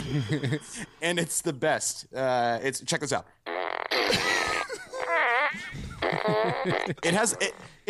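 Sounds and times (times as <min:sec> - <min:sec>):
speech: 0:00.1 - 0:04.5, 0:05.5 - 0:07.8
toy fart gun shaped like a ray gun firing electronic fart noises: 0:03.5 - 0:06.9.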